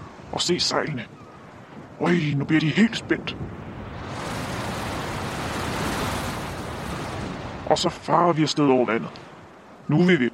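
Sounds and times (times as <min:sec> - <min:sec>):
rising wind: 0:00.0 - 0:10.3
speech: 0:00.3 - 0:01.2, 0:02.0 - 0:03.6, 0:07.7 - 0:09.3, 0:09.9 - 0:10.3
surf roaring: 0:02.9 - 0:09.9.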